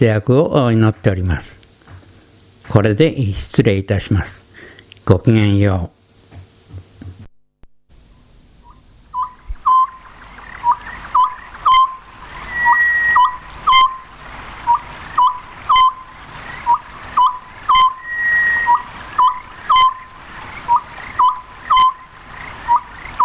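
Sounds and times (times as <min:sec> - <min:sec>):
speech: 0:00.0 - 0:01.6, 0:02.7 - 0:04.5, 0:05.1 - 0:06.0
Oriental scops owl hooting: 0:08.6 - 0:23.2.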